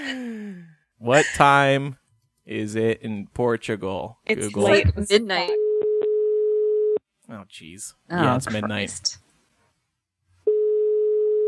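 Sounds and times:
speech: 1.0 - 5.6, 7.3 - 9.2
steady electronic telephone ringtone: 5.6 - 7.0, 10.5 - 11.4.

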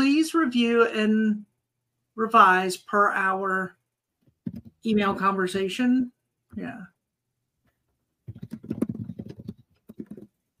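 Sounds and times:
speech: 0.4 - 1.5, 2.2 - 3.8, 4.5 - 6.9
loud rapid typing on a computer keyboard: 4.4 - 4.8, 8.3 - 10.3.

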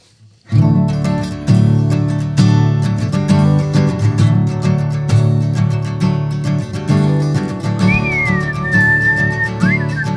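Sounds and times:
strummed guitar: 0.4 - 10.1
person whistling a short wavering melody: 7.8 - 10.1.

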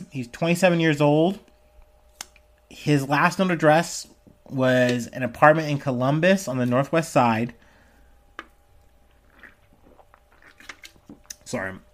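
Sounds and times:
speech: 0.1 - 1.5, 2.8 - 7.6, 11.5 - 11.9
gum chewing while walking: 8.4 - 11.5.

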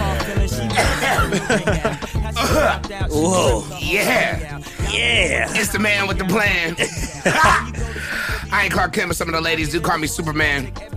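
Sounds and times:
harsh coughing after a smoke inhale: 0.6 - 2.9, 6.7 - 7.9
person chuckling: 0.7 - 2.8, 6.7 - 8.0
speech: 1.3 - 10.9.

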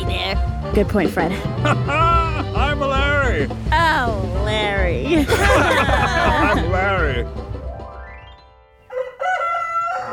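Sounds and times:
speech: 0.3 - 7.5
laughter: 1.3 - 3.4, 5.1 - 7.3
rooster crowing: 8.9 - 10.1.

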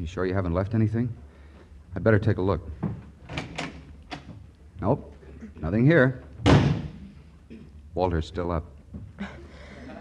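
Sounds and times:
speech: 0.0 - 1.3, 2.0 - 2.9, 4.8 - 6.7, 7.5 - 9.4
low hum: 0.0 - 9.9
closet door opening with wooden clacks and rattles: 3.2 - 4.4.

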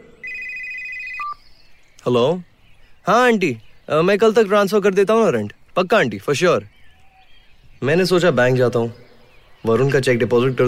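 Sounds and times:
phone ringing with trilling electronic tone: 0.0 - 1.4
speech: 2.0 - 6.7, 7.8 - 9.0, 9.6 - 10.6.

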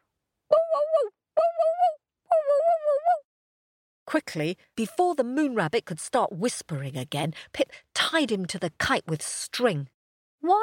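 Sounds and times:
person imitating a small dog barking: 0.5 - 3.2
speech: 4.1 - 10.6.

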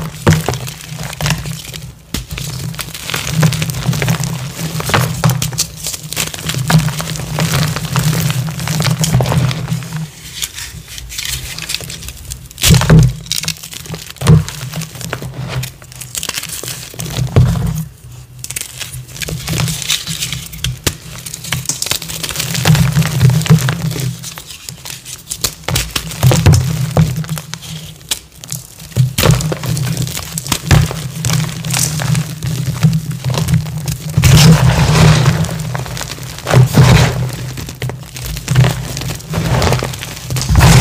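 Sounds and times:
gym chalk crushed and crumbled: 0.0 - 40.8
sharp cracks: 34.2 - 40.8.

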